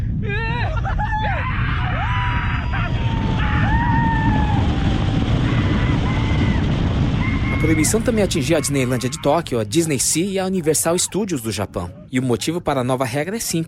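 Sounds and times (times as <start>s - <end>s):
loud constant rushing rumble: 0.0s - 12.1s
several voices screaming and whooping: 0.2s - 9.4s
speech: 7.7s - 13.6s.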